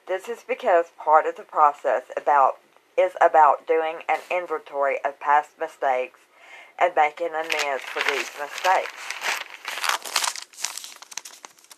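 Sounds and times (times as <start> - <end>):
speech: 0.1 - 9.2
paper page being handled and turned, crinkling: 7.4 - 11.7.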